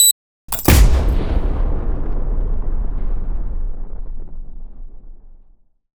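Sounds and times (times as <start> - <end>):
mine beeping: 0.0 - 0.9
mine explosion: 0.5 - 5.8.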